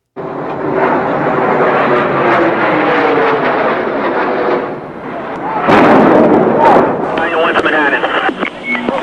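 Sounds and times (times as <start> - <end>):
jet plane roaring: 0.0 - 9.0
jet plane crashing into a building: 5.7 - 7.1.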